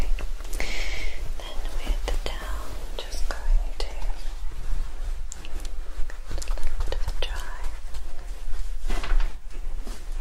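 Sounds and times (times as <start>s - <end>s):
scratchy hair brushing strokes: 0.0s - 9.1s
scalp massage and hair handling rustling: 0.0s - 10.2s.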